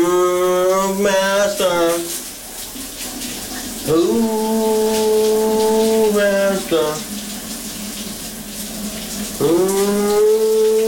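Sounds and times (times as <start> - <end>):
man singing a pop song in the shower: 0.0 - 2.1, 3.9 - 7.1, 9.4 - 10.8
shower water running: 0.0 - 10.8
speech: 3.9 - 4.5.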